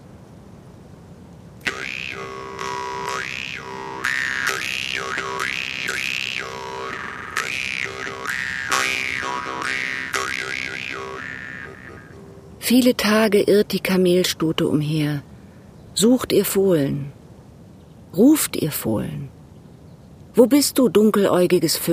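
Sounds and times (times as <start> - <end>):
nomad music played on a timikomus: 1.6 - 12.6
speech: 12.7 - 15.3, 16.0 - 17.2, 18.1 - 19.4, 20.4 - 21.9.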